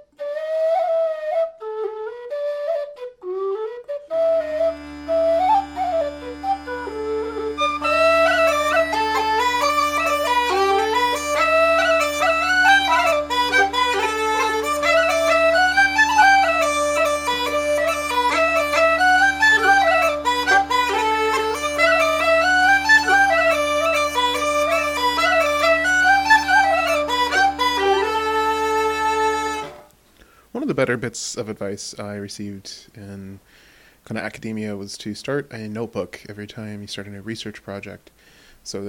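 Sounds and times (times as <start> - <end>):
bright ornamented traditional melody on pipes: 0.0 - 29.9
speech: 30.9 - 38.8.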